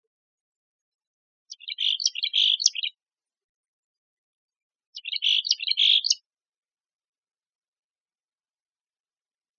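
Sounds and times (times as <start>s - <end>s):
Mexican chickadee calling: 1.5s - 3.0s, 5.0s - 6.2s.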